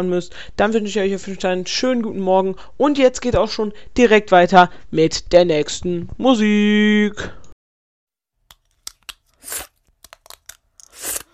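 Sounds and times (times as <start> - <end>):
speech: 0.0 - 7.4
plastic dental aligner crackling as pulled out of the mouth: 8.5 - 11.3.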